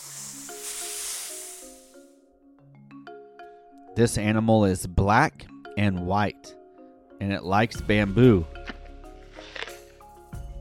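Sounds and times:
snake hissing: 0.0s - 2.2s
speech: 4.0s - 6.6s, 7.2s - 8.6s.

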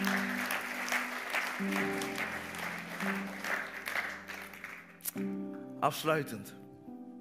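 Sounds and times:
roomful of people clapping steadily together: 0.0s - 5.0s
speech: 1.6s - 2.0s, 5.2s - 6.6s.

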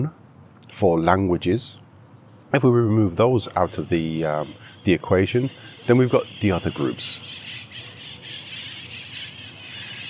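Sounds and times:
speech: 0.0s - 1.8s, 2.5s - 7.4s
birds squawking and screeching: 2.2s - 10.0s.

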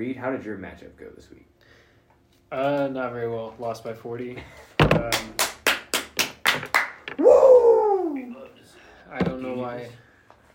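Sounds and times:
speech: 0.0s - 1.8s, 2.5s - 5.5s, 9.1s - 10.1s
man clapping hands: 5.0s - 7.2s
drawn-out rising and falling yell from a man: 7.2s - 8.4s.

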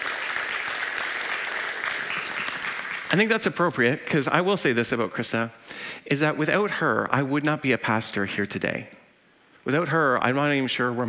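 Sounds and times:
audience applauding: 0.0s - 3.4s
speech: 3.1s - 9.0s, 9.6s - 11.0s.

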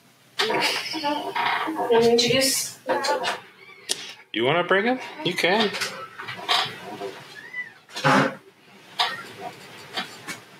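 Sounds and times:
speech: 0.5s - 3.5s, 4.4s - 5.9s
tiny male kitten giving a short thin meow: 3.6s - 4.1s, 7.4s - 7.8s.

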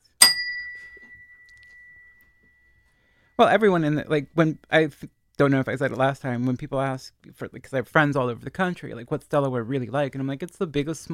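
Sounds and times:
bright bell ding: 0.0s - 2.8s
speech: 3.4s - 11.1s.

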